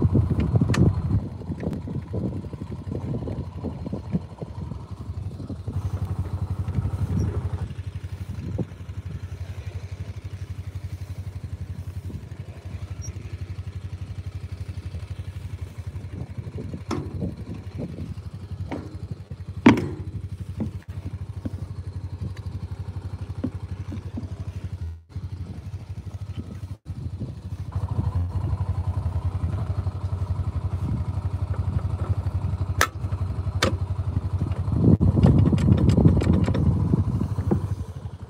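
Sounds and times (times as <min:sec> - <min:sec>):
small Honda gasoline engine running: 0:00.0 - 0:38.2
clanks and knocks: 0:16.6 - 0:21.8, 0:23.2 - 0:24.7, 0:35.2 - 0:36.7.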